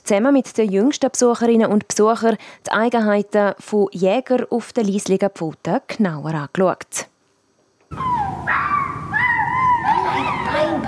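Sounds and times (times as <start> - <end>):
speech: 0.1 - 7.1
kindergarten children imitating fox yelps and barks: 7.9 - 10.8.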